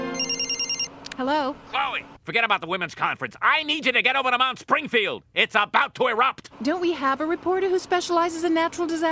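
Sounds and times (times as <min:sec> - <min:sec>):
cell phone ringtone playing a bright electronic melody: 0:00.1 - 0:00.9
speech: 0:01.2 - 0:09.1.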